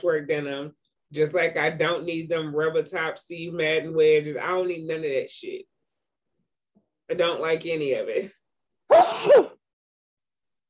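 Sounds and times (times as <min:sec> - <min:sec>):
speech: 0:00.0 - 0:05.7, 0:07.1 - 0:09.5
person sneezing: 0:08.9 - 0:09.6.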